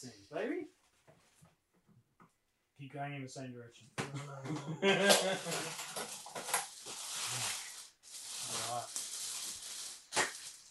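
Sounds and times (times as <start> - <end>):
speech: 2.8 - 6.3
laughter: 4.1 - 6.0
plastic packaging crinkling as it is pulled open: 5.4 - 10.6.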